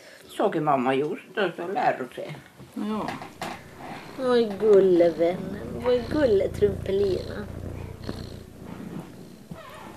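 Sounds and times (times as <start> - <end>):
speech: 0.4 - 3.4, 4.2 - 7.6
young cat purring while grooming itself: 2.8 - 9.9.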